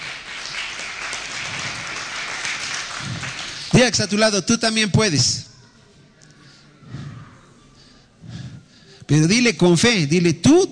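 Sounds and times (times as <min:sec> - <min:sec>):
crowd applauding in a large room: 0:00.0 - 0:03.9
speech: 0:03.8 - 0:05.5, 0:09.1 - 0:10.6.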